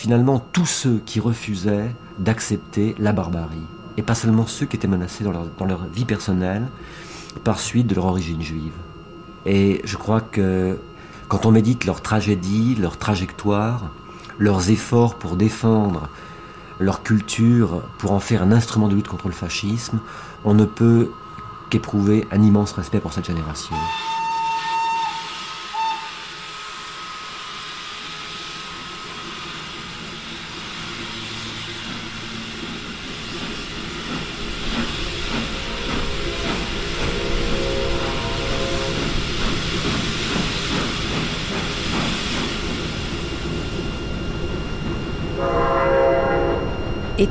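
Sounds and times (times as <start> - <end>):
speech: 0.0 - 24.2
train horn blasts: 23.7 - 26.2, 36.1 - 39.2, 45.4 - 46.8
train rumbling along the rails: 29.2 - 45.4.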